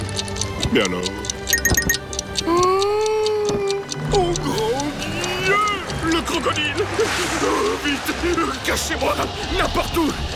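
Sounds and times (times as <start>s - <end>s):
alarm clock ticking: 0.0s - 10.3s
speech: 0.7s - 1.2s, 6.5s - 10.3s.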